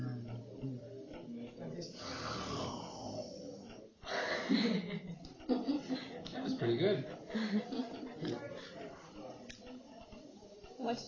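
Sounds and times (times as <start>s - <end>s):
faint voice-like murmuring: 0.0s - 11.0s
deep breathing: 1.9s - 4.4s
laughter: 4.0s - 9.2s
speech: 6.6s - 8.9s, 10.9s - 11.0s.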